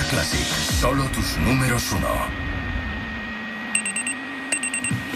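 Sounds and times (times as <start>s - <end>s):
speech: 0.1s - 2.4s
steady low hum: 0.7s - 5.1s
electronic alarm clock beeping: 3.6s - 5.1s.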